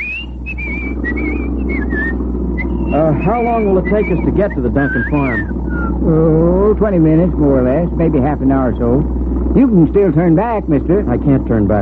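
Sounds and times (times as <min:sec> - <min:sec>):
person whistling a tune: 0:00.0 - 0:06.0
steady low engine-like rumble: 0:00.0 - 0:11.7
speech: 0:03.0 - 0:11.7.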